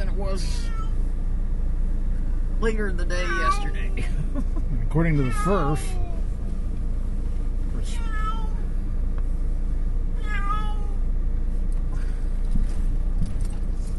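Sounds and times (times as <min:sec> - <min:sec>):
low hum: 0:00.0 - 0:13.9
speech: 0:00.2 - 0:00.8, 0:02.6 - 0:06.1
female cat meowing: 0:00.4 - 0:01.0, 0:03.2 - 0:04.0, 0:05.2 - 0:06.3, 0:07.8 - 0:08.6, 0:10.2 - 0:11.0.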